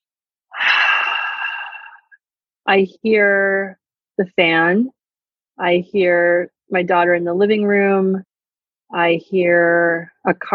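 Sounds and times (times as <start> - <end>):
deep breath: 0.5 - 2.2
speech: 2.7 - 5.0, 5.6 - 8.3, 8.9 - 10.5.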